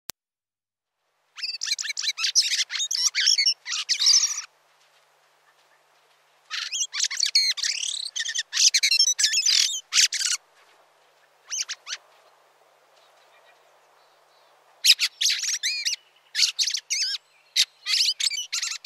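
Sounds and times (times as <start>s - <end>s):
Fieldfare chattering song: 1.4s - 4.5s, 6.5s - 10.4s, 11.4s - 12.0s, 14.8s - 18.8s.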